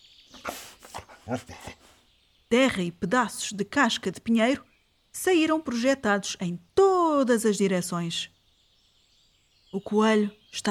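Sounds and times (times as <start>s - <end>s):
dog sniffing close to the ground and snorting: 0.3s - 2.1s
speech: 1.3s - 1.8s, 2.5s - 8.4s, 9.7s - 10.6s.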